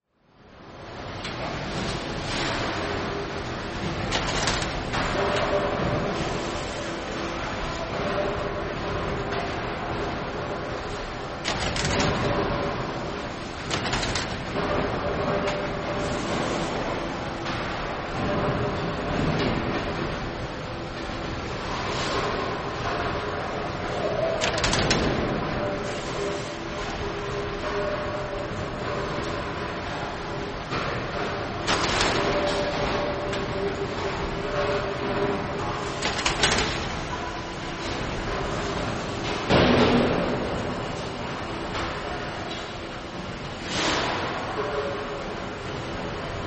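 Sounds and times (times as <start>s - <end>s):
brewery plant keg room ambience: 0.0s - 46.4s.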